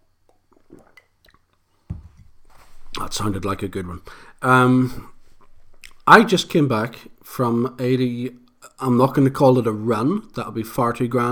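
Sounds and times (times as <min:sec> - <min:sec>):
coffee gulp: 0:00.4 - 0:01.5
person sipping coffee from a cup: 0:00.4 - 0:01.5
speech: 0:03.0 - 0:05.1, 0:06.1 - 0:11.3.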